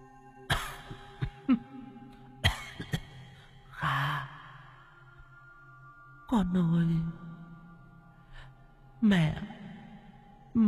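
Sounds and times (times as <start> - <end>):
woman coughing behind a curtain: 0.5 - 1.8, 2.4 - 3.2
speech: 6.3 - 7.2, 9.0 - 9.6.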